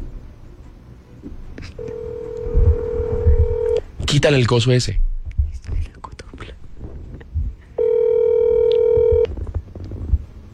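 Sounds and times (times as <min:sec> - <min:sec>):
speech: 0:01.6 - 0:02.1, 0:04.1 - 0:05.0
telephone ringback tone on an outgoing call: 0:01.8 - 0:03.8, 0:07.8 - 0:09.3
soft whispering: 0:05.5 - 0:06.7.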